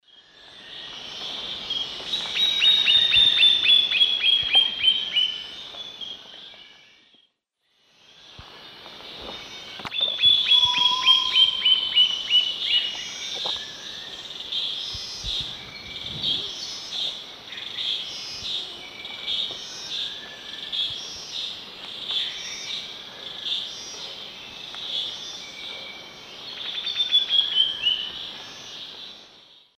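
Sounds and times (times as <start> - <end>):
Sclerurus caudacutus singing in the Eastern Lowlands of South America: 0.2 - 7.2, 9.2 - 29.6.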